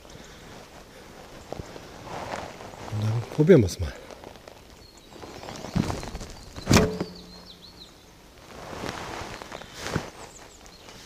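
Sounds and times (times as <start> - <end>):
birds chirping: 0.0 - 11.0
speech: 3.3 - 4.0
arrow striking a foam 3D bear target: 6.6 - 7.2.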